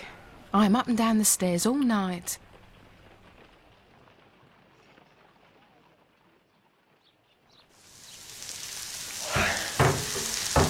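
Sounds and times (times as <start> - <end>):
speech: 0.5 - 2.5
bacon sizzling and crackling in a frying pan: 7.8 - 10.6.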